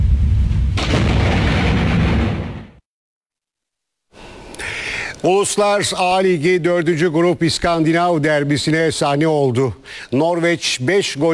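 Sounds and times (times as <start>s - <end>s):
lightning strike near a truck in rainy weather: 0.0s - 2.8s
thunder rumble near a truck in rainy weather: 0.0s - 2.8s
speech: 5.2s - 11.3s.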